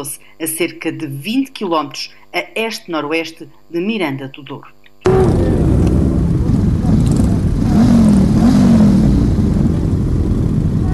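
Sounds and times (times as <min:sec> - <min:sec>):
speech: 0:00.0 - 0:04.8
classic car and motorcycle engines revving on a village tour: 0:05.1 - 0:10.9.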